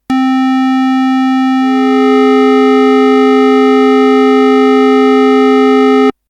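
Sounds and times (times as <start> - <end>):
minor sixth harmony: 1.0 - 6.1.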